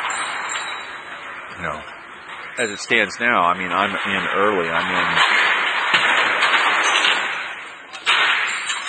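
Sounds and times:
heavy metal chain rattling as it is pulled up: 0.0 - 1.3, 5.2 - 8.8
speech: 1.6 - 2.0, 2.6 - 5.4
chain banging against the box it came out of: 5.9 - 8.8.

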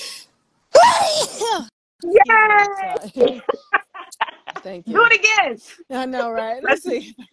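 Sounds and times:
loud sneeze: 0.7 - 1.7
speech: 1.6 - 3.8, 4.6 - 7.3
laughter: 3.0 - 4.7.

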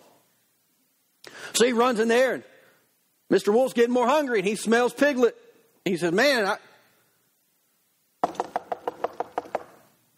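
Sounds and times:
speech: 1.6 - 2.5, 3.3 - 6.7
knocking on a wooden house's door: 8.2 - 9.8.

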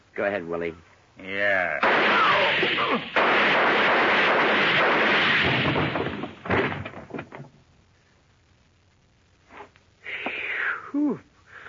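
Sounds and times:
speech: 0.2 - 4.0
gunshots fired with guns held up close in a radio drama: 1.8 - 6.6.

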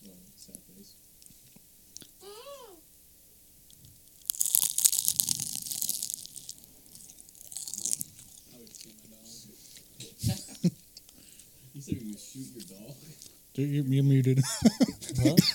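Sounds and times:
speech: 0.5 - 1.1, 13.6 - 15.5
something crisp being bitten and chewed: 3.7 - 9.9
laughter: 10.0 - 10.8, 14.3 - 15.5.

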